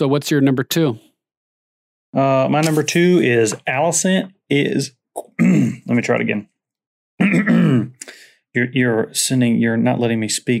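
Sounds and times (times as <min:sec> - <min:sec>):
speech: 0:00.0 - 0:01.1, 0:02.1 - 0:06.5, 0:07.2 - 0:10.5
person making a forced voiced gagging grunt: 0:05.2 - 0:05.9, 0:07.2 - 0:08.0
short harsh cough-like burst: 0:07.2 - 0:08.0.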